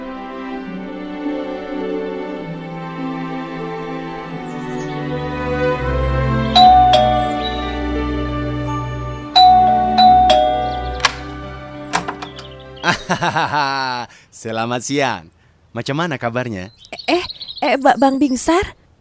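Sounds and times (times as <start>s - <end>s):
soft steady musical backdrop: 0.0s - 13.4s
doorbell chiming ding-dong tones: 6.6s - 11.2s
laughter: 12.8s - 14.1s
speech: 13.2s - 16.9s, 17.7s - 18.8s.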